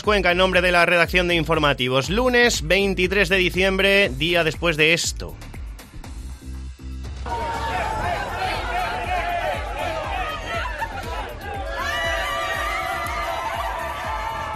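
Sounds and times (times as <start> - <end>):
speech: 0.0 - 5.6
dense crowd shouting and cheering at lottery win celebration: 7.2 - 14.5
people laughing in crowd: 7.3 - 14.0.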